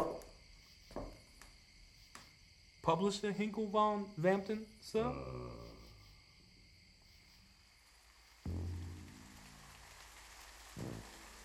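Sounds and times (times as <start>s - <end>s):
faint insect chirps: 0.0s - 11.4s
speech: 2.8s - 5.6s
steady rain on a hard street surface at night: 7.6s - 11.4s
low thuds or splashes: 8.5s - 11.4s.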